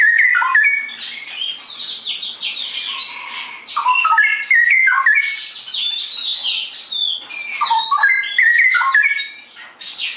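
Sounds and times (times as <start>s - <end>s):
straw-headed bulbul singing: 0.0s - 10.1s.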